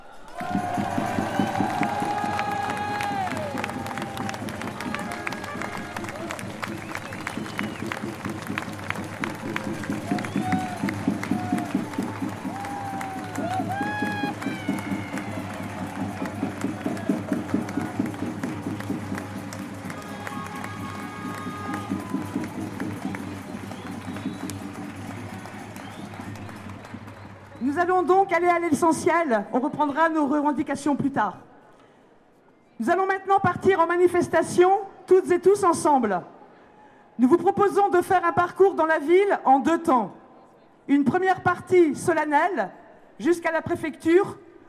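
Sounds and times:
people shouting: 0.0s - 6.4s, 10.1s - 18.0s, 19.9s - 22.4s
large crowd clapping and cheering to welcome a group of occupiers: 0.0s - 28.9s
speech: 27.9s - 31.5s, 32.8s - 36.3s, 37.2s - 40.2s, 40.9s - 44.4s.

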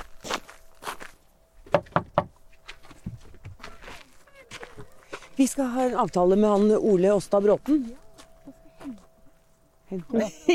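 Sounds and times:
footsteps on a crunchy surface approaching a door: 0.0s - 1.7s, 2.3s - 10.3s
speech: 5.4s - 8.0s, 9.9s - 10.5s
laughter: 10.2s - 10.5s.

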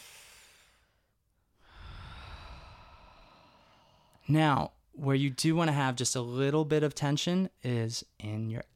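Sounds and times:
fuller rushing exhale: 0.0s - 4.2s
slow relaxed inhale through an open mouth: 0.0s - 4.2s
speech: 4.2s - 8.7s.

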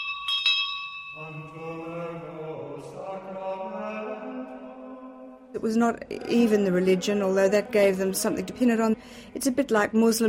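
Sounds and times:
school bell ringing: 0.0s - 1.6s
speech: 5.6s - 10.2s.

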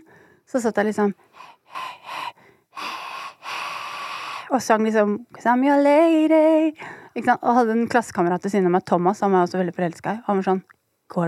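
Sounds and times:
speech: 0.5s - 2.0s, 4.5s - 11.2s
breath puffs and exhalations shaped into a song's tune: 1.2s - 4.5s.

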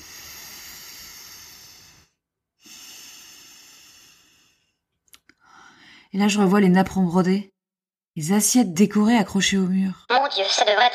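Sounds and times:
long deep breaths from a person resting under a blanket: 0.0s - 6.1s
speech: 6.1s - 7.5s, 8.2s - 10.9s.

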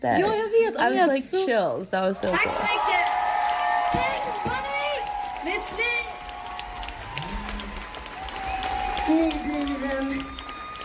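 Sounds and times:
speech: 0.0s - 3.2s, 9.1s - 10.3s
group applauding: 2.2s - 10.8s
people whooping and cheering: 2.2s - 10.8s.

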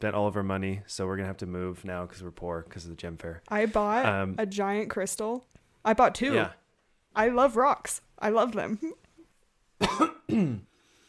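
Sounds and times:
speech: 0.0s - 6.6s, 7.2s - 9.0s, 9.8s - 10.7s
husky coughs: 9.8s - 10.7s.

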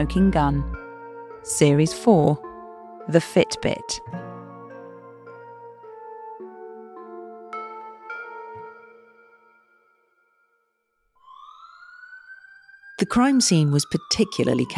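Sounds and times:
speech: 0.0s - 0.8s, 1.4s - 2.4s, 3.1s - 4.2s, 13.0s - 14.7s
police car and ambulance sirens wailing: 11.2s - 14.7s.

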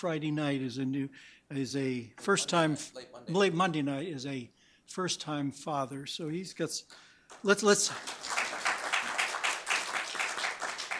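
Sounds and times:
speech: 0.0s - 8.4s
small group clapping: 6.9s - 10.9s.

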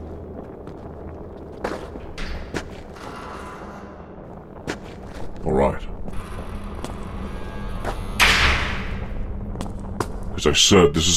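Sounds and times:
speech: 5.5s - 5.9s, 10.4s - 11.1s
door thudding shut: 8.1s - 9.1s.

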